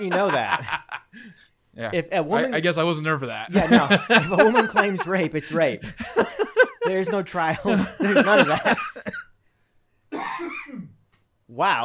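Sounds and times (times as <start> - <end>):
laughter: 0.0 - 1.5, 3.5 - 9.2
speech: 0.0 - 9.2, 11.6 - 11.8
person coughing hard and harshly: 10.1 - 11.0.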